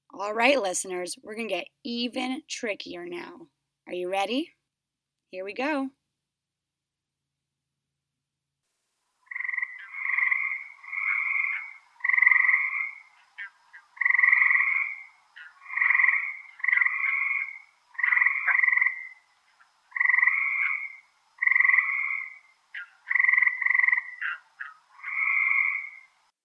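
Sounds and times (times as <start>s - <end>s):
speech: 0.2s - 4.6s, 5.3s - 6.0s
frog croaking in short nasal two-toned bursts: 9.2s - 26.2s.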